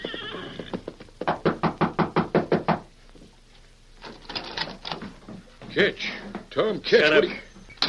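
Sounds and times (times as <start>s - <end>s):
loud quick knocks on the rear door of a cafe: 1.2s - 2.9s
speech: 5.8s - 7.8s.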